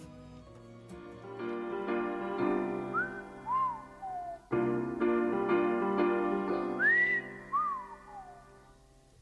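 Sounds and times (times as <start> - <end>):
instrumental backing music of an Italian song intro: 0.0 - 9.0
whistled tune in an Italian song intro: 2.1 - 4.9, 6.4 - 8.6.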